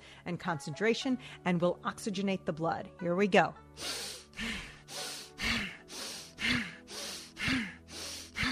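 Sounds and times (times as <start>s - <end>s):
speech: 0.2s - 4.5s
Breath of Fire rapid forceful breathing: 3.8s - 8.5s.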